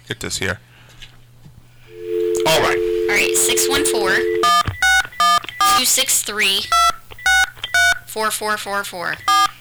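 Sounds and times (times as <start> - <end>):
speech: 0.1 - 1.1, 2.5 - 4.5, 5.8 - 6.9, 8.2 - 9.4
touch-tone telephone keypad dialing beeps: 1.9 - 9.5.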